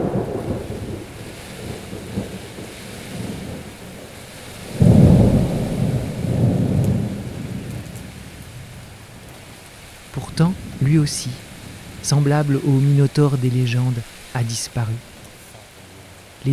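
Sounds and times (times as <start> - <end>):
low rolling thunder: 0.0 - 13.2
steady rain: 0.0 - 16.5
speech: 10.4 - 11.4, 12.0 - 15.1.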